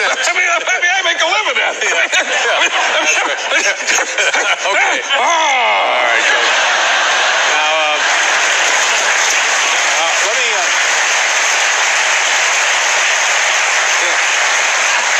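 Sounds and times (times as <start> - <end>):
voices calling out: 0.0 - 10.8
laughter: 0.0 - 15.1
sustained applause from a large audience: 0.0 - 15.1.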